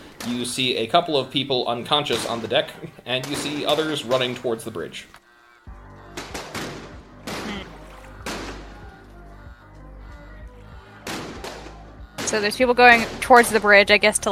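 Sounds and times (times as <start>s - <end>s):
speech: 0.2s - 5.2s, 12.3s - 14.3s
laughter: 0.3s - 4.9s, 7.3s - 9.5s
gunfire from people shooting at a staircase near a bridge: 2.1s - 4.4s, 6.2s - 8.8s, 11.0s - 13.6s
steady low drone: 5.7s - 14.3s.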